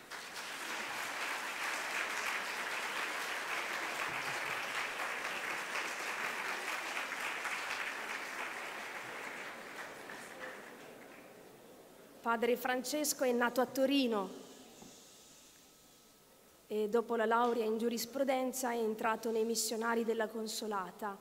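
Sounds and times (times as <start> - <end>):
crowd applauding to welcome a missionary priest: 0.0 - 11.4
speech: 12.3 - 14.4, 16.7 - 21.2.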